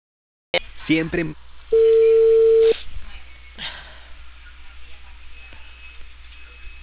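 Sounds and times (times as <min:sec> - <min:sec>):
speech: 0:00.9 - 0:01.9
telephone tone after a dropped call: 0:01.8 - 0:02.8.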